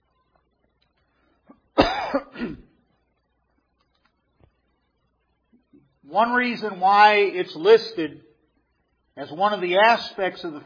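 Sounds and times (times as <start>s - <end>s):
coughing and throat clearing: 1.5s - 2.8s
speech: 6.1s - 8.2s, 9.2s - 10.6s.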